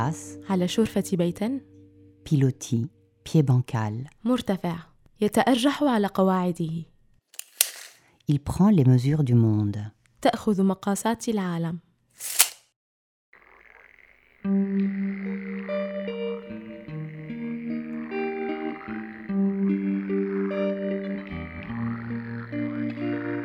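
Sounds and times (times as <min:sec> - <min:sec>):
speech: 0:00.0 - 0:06.9, 0:08.3 - 0:12.4, 0:14.4 - 0:15.6
sharp click: 0:07.4 - 0:08.0, 0:12.2 - 0:12.6
chorus of frogs croaking in a puddle: 0:13.4 - 0:23.4.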